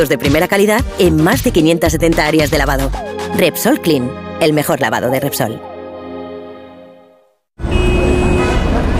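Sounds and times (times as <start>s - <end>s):
speech: 0.0s - 5.7s
car horns honking in a traffic jam: 7.6s - 8.9s
dense wall of traffic noise: 7.6s - 8.9s.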